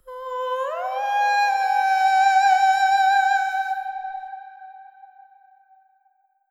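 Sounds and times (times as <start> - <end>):
person singing: 0.0 - 4.6.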